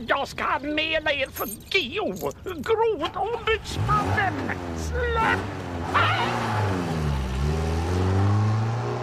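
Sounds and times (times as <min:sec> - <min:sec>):
speech: 0:00.2 - 0:06.8
car engine pulling away: 0:03.4 - 0:09.0.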